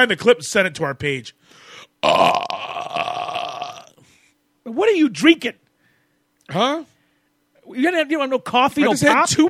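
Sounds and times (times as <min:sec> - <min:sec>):
speech: 0:00.0 - 0:03.0, 0:04.7 - 0:05.6, 0:06.5 - 0:06.9, 0:07.7 - 0:09.4
long loud raspy burp: 0:02.0 - 0:04.0.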